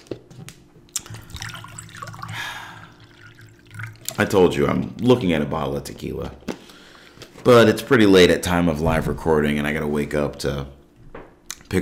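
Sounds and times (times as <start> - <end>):
water pouring into a glass: 1.0 - 4.4
speech: 4.2 - 6.5, 7.4 - 10.8.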